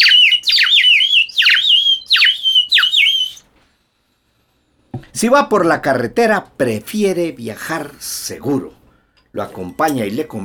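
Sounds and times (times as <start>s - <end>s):
flock of swift colorful small birds chirping and twittering: 0.0s - 3.4s
speech: 5.2s - 10.4s.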